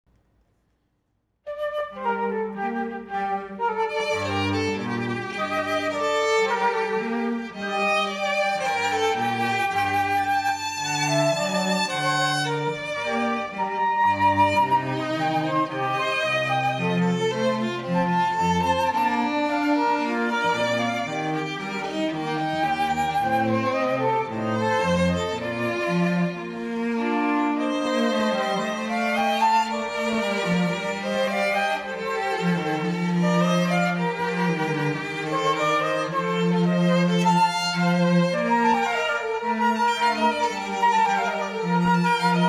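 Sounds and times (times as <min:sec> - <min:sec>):
flute trio playing a sonata in G minor: 0:01.5 - 0:42.4.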